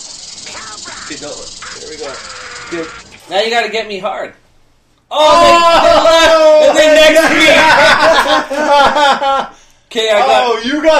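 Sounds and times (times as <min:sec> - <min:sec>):
loud sustained snake-like hiss: 0:00.0 - 0:03.2
speech: 0:01.1 - 0:04.4, 0:05.1 - 0:10.9
laughter: 0:05.5 - 0:09.5.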